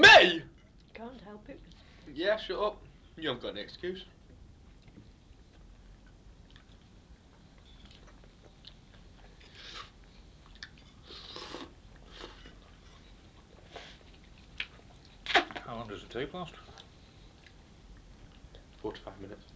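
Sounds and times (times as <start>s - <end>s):
speech: 0.2s - 4.2s, 15.7s - 16.7s, 18.8s - 19.5s
person slurping tea from a mug: 11.0s - 12.6s.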